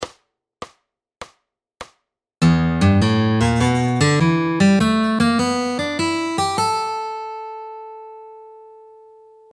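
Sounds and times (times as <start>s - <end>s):
fingerstyle blues guitar rhythm and lead: 2.4s - 8.7s.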